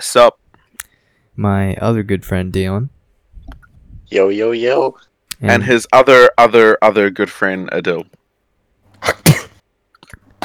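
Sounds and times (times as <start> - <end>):
speech: 0.0 - 0.4, 1.4 - 8.2, 9.0 - 9.3
sharp harsh coughing: 9.0 - 9.6.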